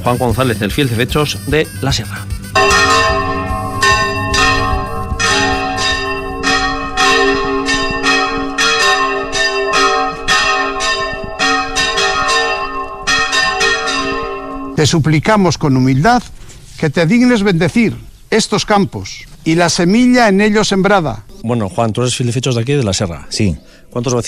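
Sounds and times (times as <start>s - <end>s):
speech: 0.0s - 2.8s, 14.8s - 24.2s
church bells ringing a full-circle swinging peal in the sierra: 2.6s - 15.9s.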